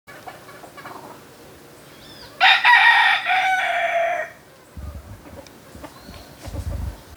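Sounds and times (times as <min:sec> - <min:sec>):
rooster crowing: 0:02.0 - 0:04.4.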